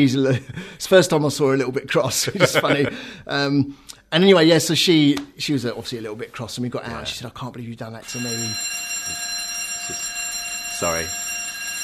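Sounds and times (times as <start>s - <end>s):
speech: 0.0s - 9.2s, 10.8s - 11.2s
laughter: 2.1s - 3.1s
fire alarm test ringing in a high metallic tone: 8.0s - 11.8s.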